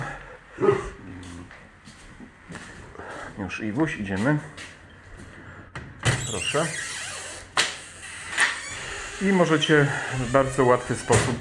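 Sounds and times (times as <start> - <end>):
speech: 0.6 - 0.9, 3.4 - 4.7, 6.3 - 6.9, 9.2 - 11.4
dog barking: 0.6 - 1.0.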